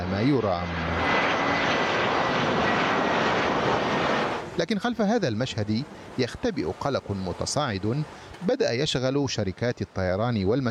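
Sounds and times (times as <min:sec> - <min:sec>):
aircraft engine roar of planes taking off and landing at a busy airport: 0:00.0 - 0:08.4
speech: 0:00.1 - 0:01.7, 0:04.6 - 0:10.6.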